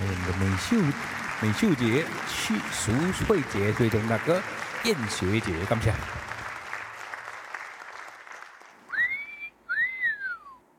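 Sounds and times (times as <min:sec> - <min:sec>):
audience clapping: 0:00.0 - 0:09.4
speech: 0:00.2 - 0:06.3
loud whistles: 0:08.9 - 0:10.6.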